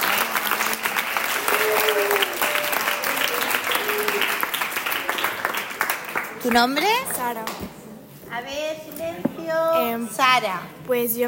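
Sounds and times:
faint voices and cheers: 0.0s - 5.4s
audience applause: 0.0s - 7.2s
speech: 6.4s - 7.7s, 8.3s - 11.2s.

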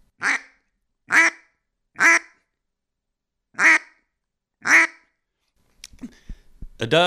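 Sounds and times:
quacks blown on a duck call imitating a mallard hen: 0.2s - 2.4s, 3.6s - 4.0s, 4.6s - 5.1s
person talking: 6.8s - 7.0s.

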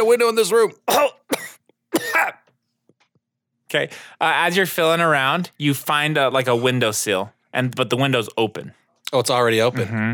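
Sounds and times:
speech: 0.0s - 1.2s, 3.7s - 10.1s
person coughing harshly: 0.9s - 2.5s
quiet breath: 3.9s - 4.2s.

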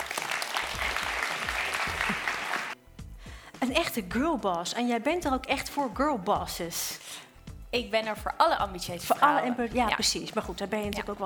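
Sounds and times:
crowd applauding: 0.0s - 2.8s
speech: 3.7s - 7.0s, 7.7s - 11.2s.

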